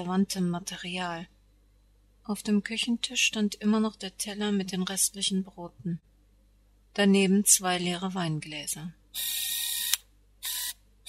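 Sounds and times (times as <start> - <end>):
speech: 0.0 - 1.4, 2.3 - 6.1, 6.9 - 9.6
mechanical camera shutter bursts as a photographer photographs letters and postcards: 9.2 - 11.0.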